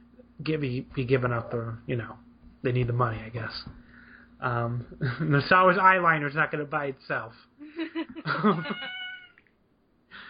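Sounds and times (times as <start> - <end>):
speech: 0.4 - 3.8, 4.4 - 9.0
cat meowing outside a window: 8.6 - 9.4.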